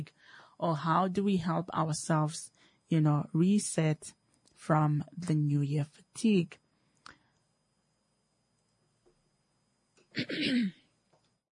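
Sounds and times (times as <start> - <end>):
speech: 0.0 - 6.6, 10.2 - 10.8
loud rough throat clearing: 10.1 - 10.8.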